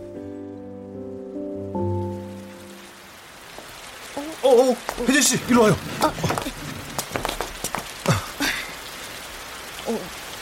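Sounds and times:
steady rain pattering on hard surfaces: 0:00.0 - 0:10.4
sharp drips: 0:03.5 - 0:10.1
speech: 0:04.5 - 0:06.5.

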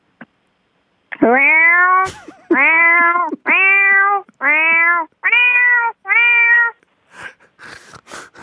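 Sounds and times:
person's voice imitating a cat meowing: 0:01.2 - 0:06.8.

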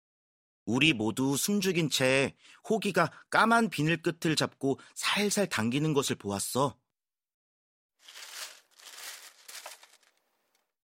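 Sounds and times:
speech: 0:00.7 - 0:06.8
plastic bag crinkling as it is tugged: 0:08.0 - 0:10.6.

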